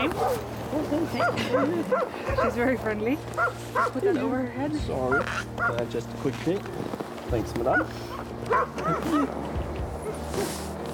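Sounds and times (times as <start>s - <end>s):
speech: 0.0s - 9.6s, 10.4s - 10.6s
murmur of noise: 0.0s - 10.9s
dog giving excited yips and barks: 0.1s - 0.4s, 1.2s - 2.6s, 3.4s - 4.0s, 8.5s - 9.3s.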